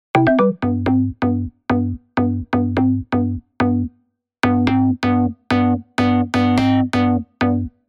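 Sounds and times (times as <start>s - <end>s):
Serum 2 bass synth in tech house: 0.2s - 7.7s.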